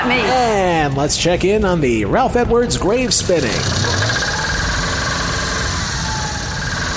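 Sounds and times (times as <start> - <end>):
speech: 0.0 - 4.0
car engine running at high revs: 3.2 - 6.9.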